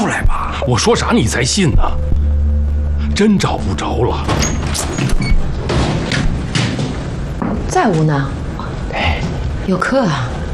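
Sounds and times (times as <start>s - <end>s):
steady rumble: 0.0s - 10.5s
speech: 0.7s - 2.0s, 3.2s - 5.1s, 7.7s - 9.1s, 9.7s - 10.4s
door pushed open with scraping and a rattle: 4.2s - 7.1s.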